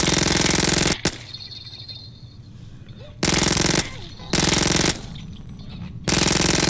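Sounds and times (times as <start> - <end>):
video game gunfire from a sawn-off shotgun and a micro SMG: 0.0 - 1.3, 3.2 - 5.2, 6.1 - 6.6
quieter game sounds: 0.0 - 6.6.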